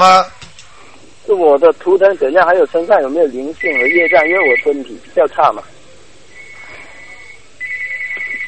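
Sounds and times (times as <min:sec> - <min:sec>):
speech: 0:00.0 - 0:00.4, 0:01.3 - 0:05.7
two electronic telephones ringing at once: 0:03.6 - 0:05.5, 0:07.6 - 0:08.4.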